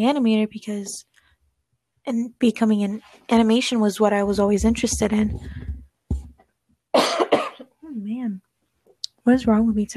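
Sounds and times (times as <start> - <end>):
speech: 0.0 - 1.1, 2.0 - 5.7, 9.2 - 9.9
sharp harsh coughs: 6.9 - 7.8.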